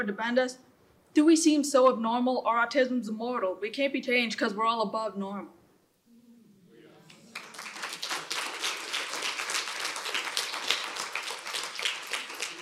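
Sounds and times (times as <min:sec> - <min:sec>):
speech: 0:00.0 - 0:05.6
audience applause at the end of a talk: 0:07.1 - 0:12.6.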